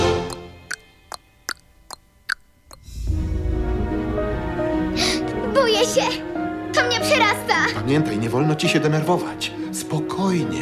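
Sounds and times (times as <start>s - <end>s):
clock ticking: 0.2s - 2.9s
dense sustained sound: 2.8s - 7.5s
speech: 5.8s - 6.2s, 7.7s - 10.6s.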